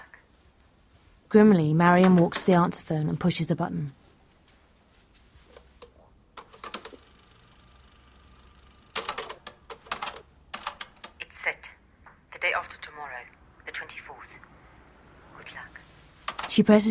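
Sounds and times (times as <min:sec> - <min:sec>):
speech: 0:01.3 - 0:04.0, 0:16.6 - 0:16.8
keyboard typing: 0:02.0 - 0:02.8, 0:05.5 - 0:11.3, 0:16.2 - 0:16.6.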